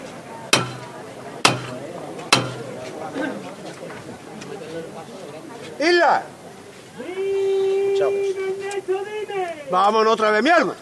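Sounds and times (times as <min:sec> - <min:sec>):
murmuring crowd with people talking: 0:00.0 - 0:10.8
capataz's knocker striking a procession float: 0:00.6 - 0:02.7
speech: 0:03.2 - 0:06.4, 0:08.0 - 0:10.8.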